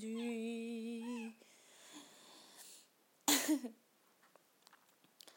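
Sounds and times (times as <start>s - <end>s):
small female cat meowing: 0.1s - 1.4s
speech: 3.5s - 3.8s.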